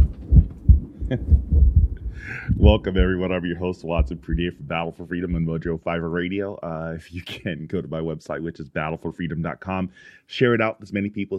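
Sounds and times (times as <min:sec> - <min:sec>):
deep heartbeat sound effect thumping: 0:00.0 - 0:05.8
speech: 0:01.1 - 0:01.6, 0:02.2 - 0:11.3.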